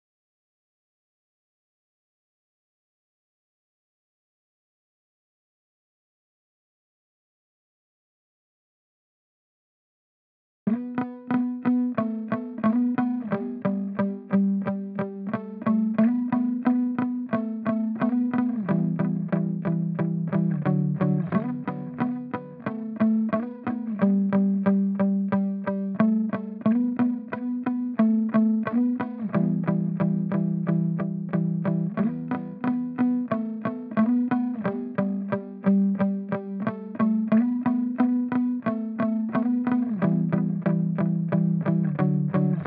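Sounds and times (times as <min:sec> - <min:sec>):
muted guitar loop in E minor: 0:10.7 - 0:42.6.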